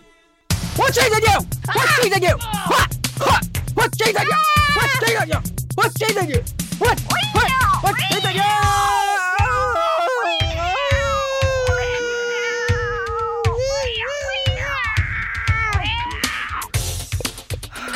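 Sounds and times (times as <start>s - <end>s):
rhythmic thumping: 0.5s - 17.9s
speech: 0.8s - 9.0s
upset cat meowing in drawn-out yowls: 12.9s - 16.8s.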